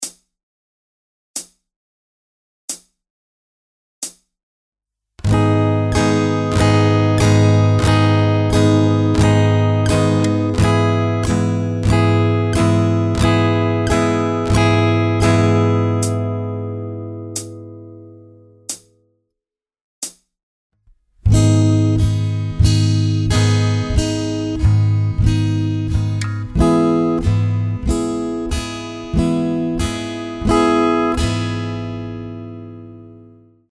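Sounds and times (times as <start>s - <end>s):
slow guitar strumming with capo on fret 4: 5.2s - 18.8s, 21.2s - 33.4s.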